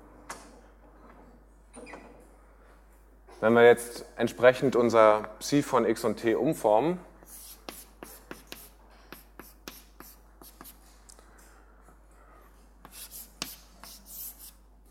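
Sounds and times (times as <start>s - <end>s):
speech: 3.4s - 7.1s
handwriting strokes writing an equation during a physics lecture: 7.2s - 10.8s, 12.8s - 14.6s.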